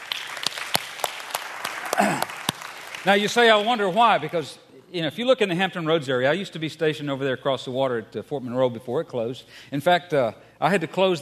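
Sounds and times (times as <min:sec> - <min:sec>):
church congregation applauding with sparse hand claps: 0:00.0 - 0:04.6
speech: 0:03.0 - 0:11.2.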